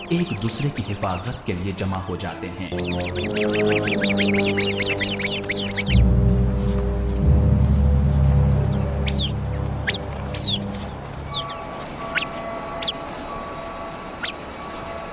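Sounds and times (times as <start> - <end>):
bird alarm calls warning of a snake: 0.0 - 15.1
speech: 0.1 - 6.1
steady low rumble: 2.7 - 13.4.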